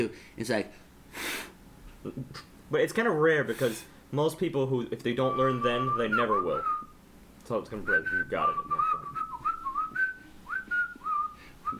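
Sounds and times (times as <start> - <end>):
speech: 0.0 - 6.8, 7.5 - 9.0
person whistling a short clear melody: 5.3 - 6.9, 7.8 - 11.7.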